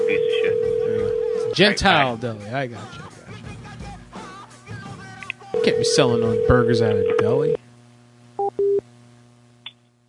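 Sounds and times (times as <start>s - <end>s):
telephone line tones after a caller hangs up: 0.0s - 1.6s, 5.6s - 7.6s
low constant hum: 0.0s - 3.0s, 5.3s - 10.0s
speech: 1.6s - 3.2s, 5.6s - 7.6s.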